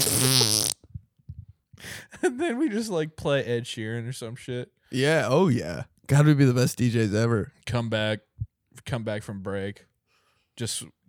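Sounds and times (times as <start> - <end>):
fart sound effect: 0.0 - 0.8
speech: 2.2 - 9.9, 10.6 - 11.0.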